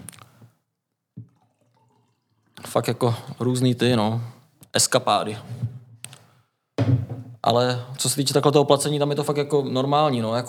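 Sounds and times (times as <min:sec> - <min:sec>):
water being poured into a glass: 0:01.2 - 0:03.3
speech: 0:02.7 - 0:05.6, 0:07.4 - 0:10.4.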